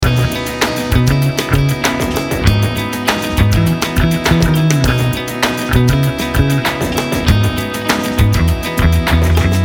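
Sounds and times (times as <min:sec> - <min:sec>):
hip-hop pop rock loop: 0:00.0 - 0:09.6.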